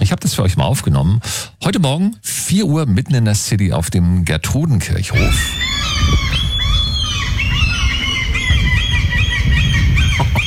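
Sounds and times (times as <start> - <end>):
speech: 0.3 - 6.4
gulls calling in a city square: 5.1 - 10.4
pigeons calling in a city square: 5.1 - 10.4.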